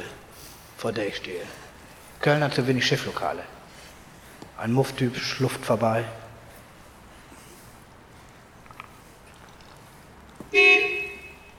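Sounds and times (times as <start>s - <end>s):
speech: 0.8s - 3.6s, 4.6s - 6.2s
car horn honking: 10.5s - 11.5s.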